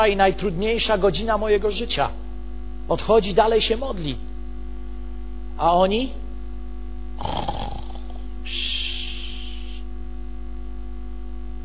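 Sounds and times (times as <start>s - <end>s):
speech: 0.0s - 2.2s, 2.9s - 4.3s, 5.6s - 6.2s, 7.2s - 7.5s
low steady hum: 0.0s - 11.6s
person imitating loud snoring: 7.2s - 9.8s.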